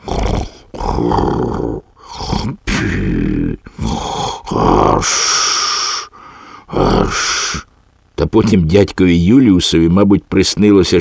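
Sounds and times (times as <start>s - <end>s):
person imitating loud snoring: 0.0s - 7.7s
speech: 1.0s - 1.8s, 2.4s - 3.2s, 5.0s - 5.5s, 8.2s - 10.9s.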